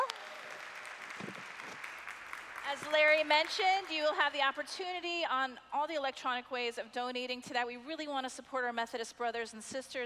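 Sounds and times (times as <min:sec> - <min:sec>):
room full of people applauding: 0:00.0 - 0:03.9
speech: 0:02.7 - 0:10.0.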